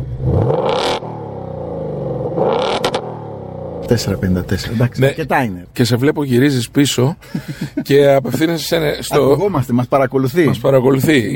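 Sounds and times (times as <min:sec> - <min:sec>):
high-performance car engine revving: 0:00.0 - 0:05.8
speech: 0:03.9 - 0:11.3
laughter: 0:07.0 - 0:08.8.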